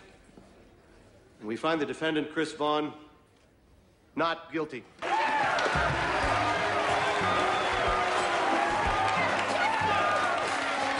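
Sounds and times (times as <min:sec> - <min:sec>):
speech: 0:01.4 - 0:03.1, 0:04.2 - 0:05.1, 0:05.7 - 0:06.1
excited voices and cheers of townspeople in a courtroom: 0:05.0 - 0:10.9
townspeople in a courtroom applauding after a not-guilty verdict: 0:05.0 - 0:10.9.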